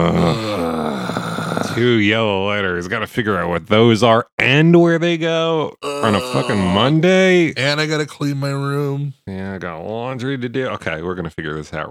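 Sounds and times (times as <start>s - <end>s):
speech: 0.0s - 0.5s, 1.8s - 11.9s
person groaning: 0.0s - 1.8s, 5.8s - 7.1s.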